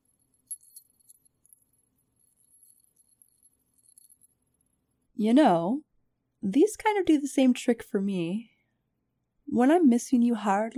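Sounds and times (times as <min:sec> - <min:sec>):
keys jangling: 0:00.0 - 0:04.7
speech: 0:05.2 - 0:05.8, 0:06.4 - 0:08.5, 0:09.5 - 0:10.7.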